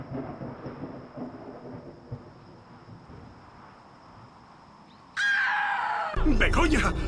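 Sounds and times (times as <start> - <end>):
distant thunder rolling: 0.0 - 4.8
loud piercing scream-like cry: 5.2 - 6.2
speech: 6.4 - 7.0.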